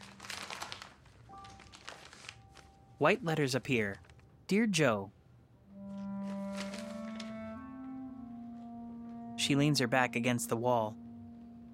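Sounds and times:
paper crinkling as an envelope is opened: 0.0s - 4.3s, 6.0s - 7.6s
speech: 3.0s - 5.2s, 9.5s - 11.0s.

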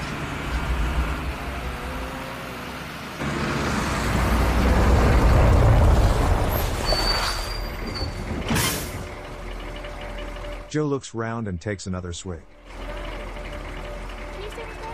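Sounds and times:
lorry engine slowing at a road checkpoint: 0.0s - 14.9s
thin high squeal: 6.6s - 9.0s
speech: 10.7s - 12.6s.

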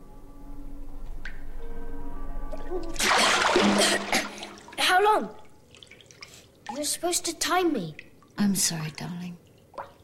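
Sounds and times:
faint water drips: 2.5s - 10.0s
bath water splashing and sloshing: 2.6s - 8.6s
speech: 2.7s - 4.2s, 5.1s - 5.4s, 6.8s - 9.4s.

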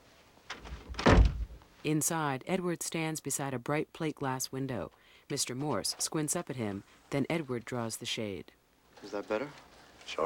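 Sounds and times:
office door closing: 0.5s - 1.6s
speech: 1.8s - 10.2s.

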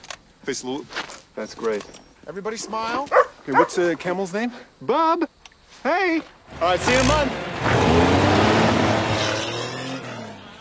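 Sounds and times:
speech: 0.5s - 8.1s
car engine driving off: 6.5s - 10.6s.

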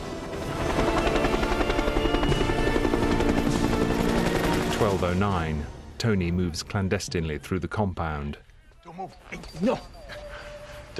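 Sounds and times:
military helicopter rotor beating during lift-off: 0.1s - 5.4s
speech: 4.8s - 8.4s, 9.0s - 10.2s.

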